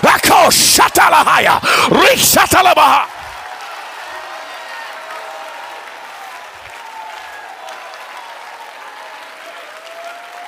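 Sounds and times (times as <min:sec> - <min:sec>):
crowd cheering and shouting: 0:00.0 - 0:10.4
audience hand claps: 0:04.9 - 0:10.4.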